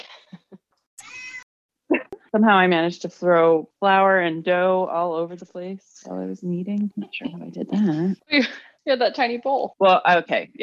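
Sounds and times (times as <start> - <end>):
cat meowing loudly: 1.0 - 1.4
speech: 2.3 - 10.6.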